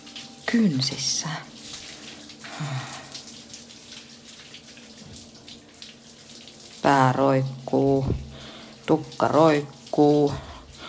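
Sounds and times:
shower water running: 0.0s - 10.8s
speech: 0.5s - 1.6s, 2.6s - 3.0s, 6.9s - 8.2s, 8.9s - 10.5s
brief low splash or thud: 8.0s - 8.4s.

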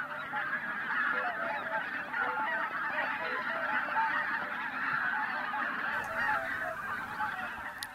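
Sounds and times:
flock of geese honking in flight: 0.0s - 7.9s
sharp clicks: 7.6s - 7.9s.

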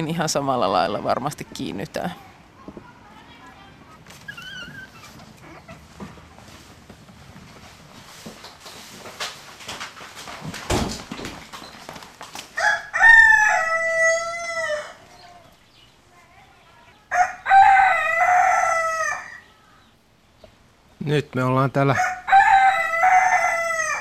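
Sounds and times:
speech: 0.0s - 2.8s, 21.4s - 22.1s
Finnish landrace hens clucking and rustling in a henhouse: 2.5s - 20.9s
Finnish landrace roosters crowing in a henhouse: 12.5s - 15.6s, 17.0s - 19.9s, 21.8s - 24.0s.

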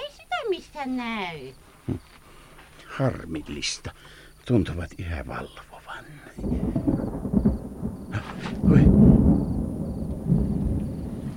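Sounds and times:
faint rain hiss: 0.0s - 11.3s
speech: 0.8s - 2.1s, 2.9s - 6.9s
thunder rumbling through a stormy night: 5.3s - 11.3s.

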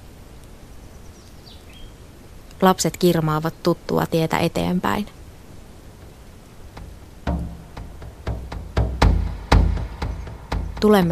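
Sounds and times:
steady rush of outdoor ambience: 0.0s - 11.1s
birds singing in a forest: 0.7s - 2.0s, 6.0s - 11.1s
speech: 2.6s - 5.2s, 10.8s - 11.1s.

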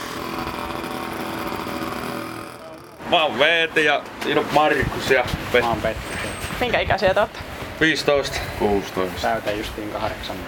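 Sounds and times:
moped engines buzzing at high revs in parking lots: 0.0s - 4.1s
speech: 3.1s - 10.4s.

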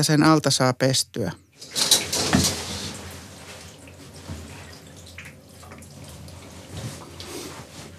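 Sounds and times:
speech: 0.0s - 2.5s
drips and knocks: 1.6s - 7.0s
shower water running: 1.6s - 7.9s.

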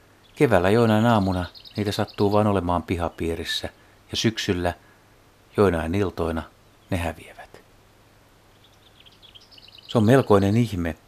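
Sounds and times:
lesser whitethroat singing: 0.2s - 3.2s, 8.5s - 10.8s
speech: 0.4s - 4.8s, 5.6s - 7.4s, 9.9s - 11.0s.

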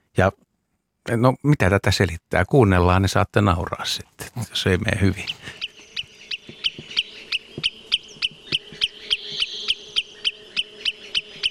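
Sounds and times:
speech: 0.2s - 0.4s, 1.0s - 5.6s
wood sandpiper alarm calls: 5.0s - 11.4s.

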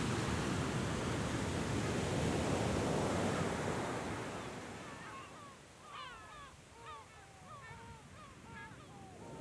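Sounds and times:
ocean waves crashing onto the shore at Grand Popo: 0.0s - 4.9s.

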